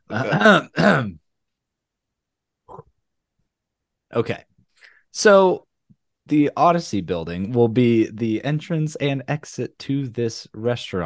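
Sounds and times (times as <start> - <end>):
throat clearing thick with phlegm: 0.0 - 1.2
speech: 0.1 - 1.2, 4.1 - 4.5, 5.2 - 5.7, 6.3 - 11.0.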